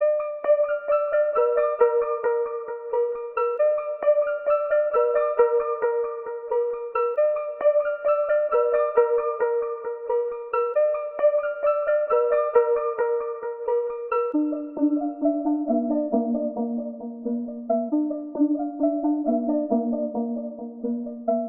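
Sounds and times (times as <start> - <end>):
D minor trap synth plucks: 0.0 - 21.4.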